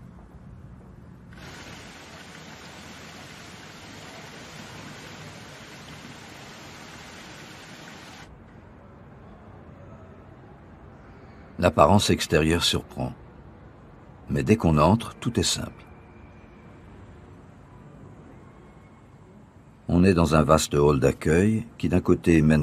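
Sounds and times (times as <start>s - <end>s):
water flowing down a gently sloping cascade surrounding a building: 1.4s - 8.3s
speech: 11.6s - 13.2s, 14.3s - 15.9s, 20.1s - 22.6s.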